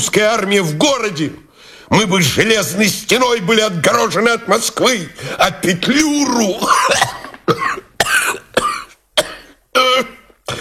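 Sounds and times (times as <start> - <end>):
speech: 0.2 - 7.8
man coughing violently and harshly: 6.6 - 10.5.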